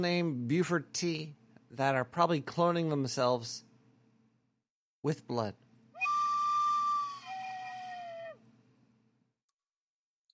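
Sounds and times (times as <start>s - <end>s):
speech: 0.0s - 3.7s, 5.0s - 5.6s
whistle blown as a signal for advertisements: 6.0s - 8.4s.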